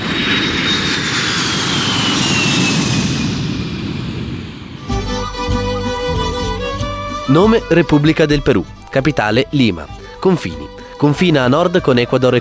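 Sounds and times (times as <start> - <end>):
airplane taking off: 0.0 - 12.3
music: 4.8 - 12.3
speech: 7.3 - 12.3.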